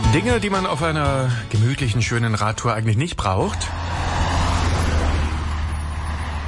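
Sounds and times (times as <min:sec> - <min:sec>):
speech: 0:00.1 - 0:04.2
trucks and cars passing close by: 0:02.3 - 0:06.4.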